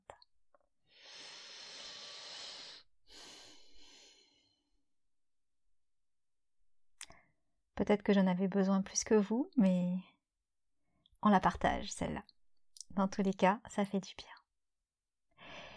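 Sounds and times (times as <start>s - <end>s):
person taking a slow deliberate breath: 0.9s - 4.7s, 15.4s - 15.7s
speech: 7.8s - 10.1s, 11.2s - 12.4s, 13.0s - 14.4s.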